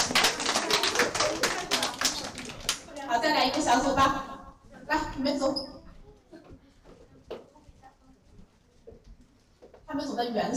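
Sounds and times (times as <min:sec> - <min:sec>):
children clapping in a classroom: 0:00.0 - 0:03.8
speech: 0:03.2 - 0:04.3, 0:04.9 - 0:05.7, 0:10.2 - 0:10.5.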